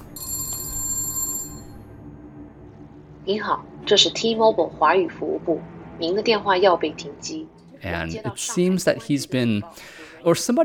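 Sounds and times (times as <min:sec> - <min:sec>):
film telephone ringing with a bright trilling electronic burst: 0:00.0 - 0:01.9
faint low hum: 0:00.0 - 0:10.6
speech: 0:03.2 - 0:10.6.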